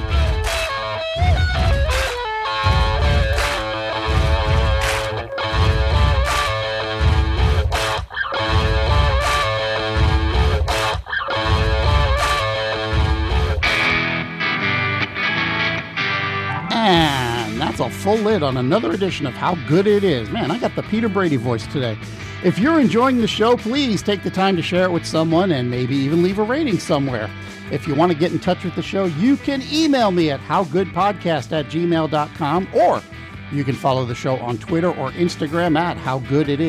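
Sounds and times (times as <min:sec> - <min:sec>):
four band members stomping and clapping in a recording studio: 0:00.0 - 0:14.7, 0:16.0 - 0:21.4
dense distorted music: 0:00.0 - 0:25.1
speech: 0:18.1 - 0:36.6.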